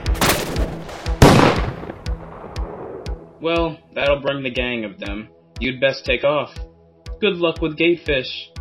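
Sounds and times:
blaster guns firing in a gunfight: 0.2s - 2.1s
speech: 3.5s - 8.5s.

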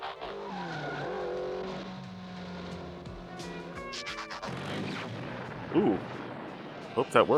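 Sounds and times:
cartoon car tires squealing and skidding: 0.0s - 7.3s
cartoon cars driving up steps with engine roar: 0.0s - 7.3s
speech: 5.7s - 6.2s, 7.0s - 7.3s.

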